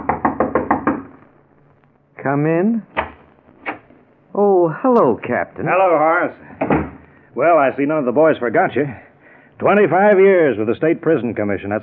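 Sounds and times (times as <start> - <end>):
quick knocks on a wooden door: 0.0 - 1.1
speech: 2.2 - 3.0, 4.4 - 6.6, 7.4 - 11.8.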